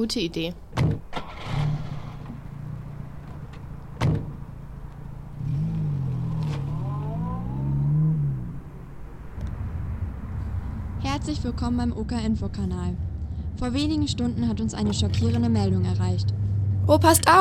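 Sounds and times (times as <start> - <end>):
speech: 0.0 - 1.0, 11.3 - 17.3
car engine starting, revving and driving off: 0.6 - 17.3
car doors thudding shut: 0.7 - 2.5, 3.2 - 4.5.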